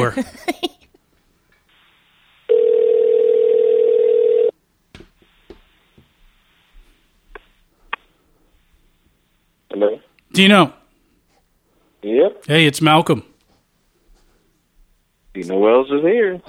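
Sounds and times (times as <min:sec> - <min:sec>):
speech: 0:00.0 - 0:00.7, 0:09.8 - 0:10.8, 0:12.0 - 0:13.3, 0:15.4 - 0:16.4
telephone dial tone of an outgoing call: 0:02.5 - 0:04.5.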